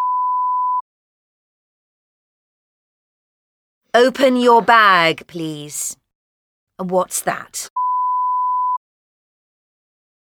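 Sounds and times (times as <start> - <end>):
mobile phone beep during a classroom lesson: 0.0 - 0.8, 7.8 - 8.8
speech: 3.9 - 6.0, 6.8 - 7.7.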